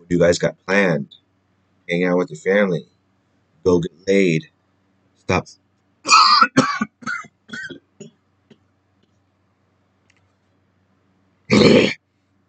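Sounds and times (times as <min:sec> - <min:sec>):
speech: 0:00.1 - 0:01.2, 0:01.9 - 0:02.9, 0:03.6 - 0:04.6, 0:05.3 - 0:06.6
person coughing with something stuck in the throat: 0:06.1 - 0:08.1, 0:11.5 - 0:12.0
throat clearing from someone with something stuck in the throat: 0:06.1 - 0:08.2, 0:11.5 - 0:12.0.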